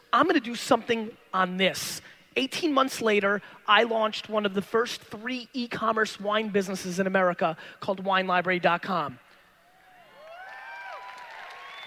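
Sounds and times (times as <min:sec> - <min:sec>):
speech: 0:00.2 - 0:09.2
audience cheering and whooping: 0:09.8 - 0:11.8
audience clapping: 0:10.2 - 0:11.8.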